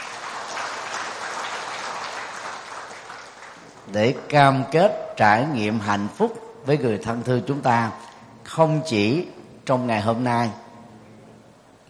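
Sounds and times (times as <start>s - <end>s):
audience applauding at a talk: 0.0s - 4.1s
speech: 3.9s - 10.6s.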